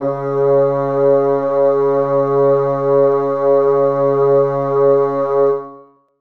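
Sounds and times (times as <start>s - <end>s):
bassoons sustaining C sharp 3: 0.0s - 5.8s.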